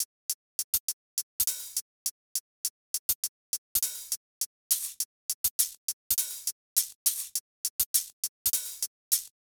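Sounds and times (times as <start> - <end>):
drums in F minor: 0.0 - 9.3.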